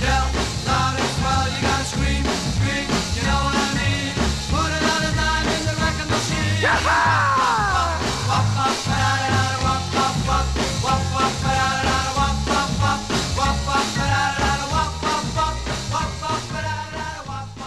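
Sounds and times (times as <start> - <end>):
1960s rock and roll song with full band: 0.0 - 17.6
energetic shouted vocals: 6.4 - 9.6.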